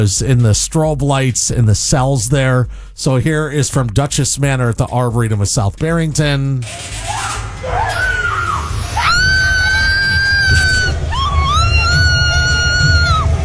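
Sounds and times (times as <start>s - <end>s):
speech: 0.0s - 7.8s
dense crowd noise: 6.4s - 13.4s
woman screaming in a haunted house: 7.0s - 13.4s.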